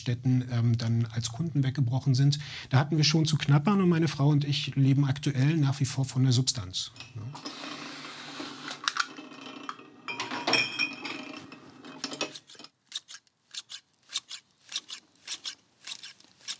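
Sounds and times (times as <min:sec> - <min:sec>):
speech: 0:00.0 - 0:07.8
rustling: 0:12.0 - 0:16.5
scissors snipping the ends of hair during a trim: 0:12.9 - 0:16.5.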